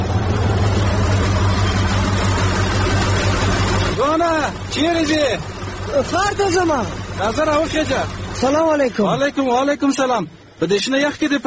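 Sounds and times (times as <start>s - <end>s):
broad rushing noise: 0.0s - 8.9s
truck engine rumbling on a desert road: 0.0s - 11.4s
speech: 4.8s - 11.4s.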